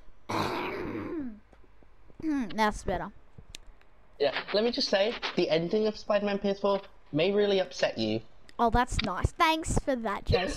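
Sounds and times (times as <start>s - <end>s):
single rough drawn-out cough trailing into a low falling groan: 0.3s - 1.4s
speech: 2.6s - 3.2s, 4.2s - 10.5s.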